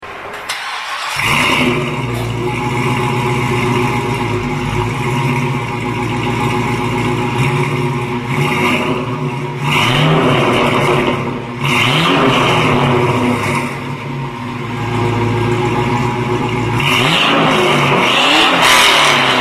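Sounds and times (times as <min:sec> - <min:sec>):
Camaro 5.7 engine: 0:00.0 - 0:19.3.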